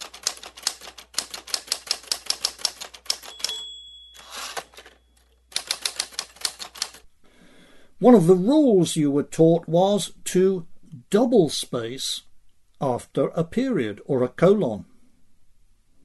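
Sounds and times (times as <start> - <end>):
mechanical typewriter key strikes clattering: 0.0 - 7.0
mechanical typewriter bell ding: 3.1 - 5.9
speech: 8.0 - 14.9.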